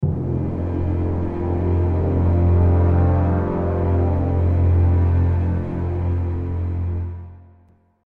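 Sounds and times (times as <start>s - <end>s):
low timpani attack: 0.0s - 6.4s.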